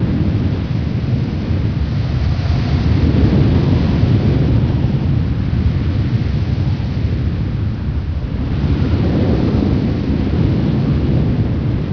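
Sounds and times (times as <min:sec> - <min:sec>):
wind on a rooftop: 0:00.0 - 0:11.9.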